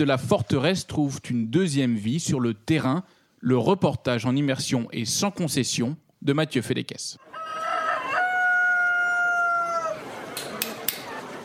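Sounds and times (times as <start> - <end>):
speech: 0.0 - 7.4
rooster crowing at dawn: 7.2 - 10.3.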